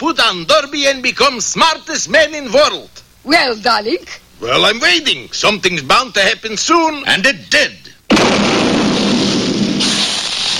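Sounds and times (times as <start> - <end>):
speech: 0.0 - 8.6
cartoon explosion sound effect: 8.1 - 10.5.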